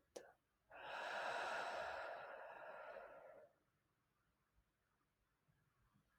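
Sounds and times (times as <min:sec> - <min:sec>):
long deep exhale: 0:00.8 - 0:03.5.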